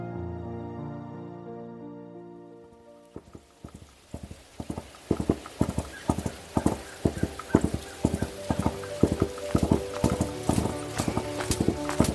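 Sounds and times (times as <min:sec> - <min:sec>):
horse hooves clip-clopping as the horse trots: 0:03.1 - 0:12.1.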